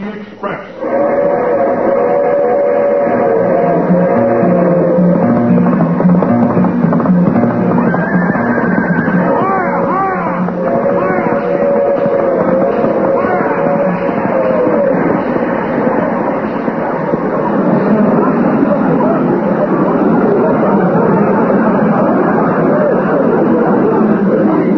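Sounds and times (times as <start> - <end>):
sustained train whistle tone: 0.8 - 17.5
passenger train rumbling past: 0.8 - 24.7.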